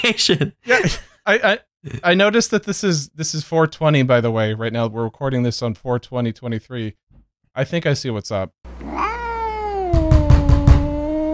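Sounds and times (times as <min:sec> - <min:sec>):
speech: 0:00.0 - 0:09.0
cat bumping into a door with low hollow thuds: 0:09.9 - 0:11.1.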